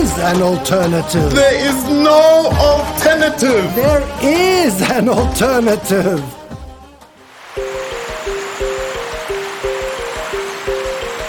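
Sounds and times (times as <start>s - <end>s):
speech: 0.2s - 6.4s
Limpopo River flowing on a moonless night: 7.2s - 11.2s.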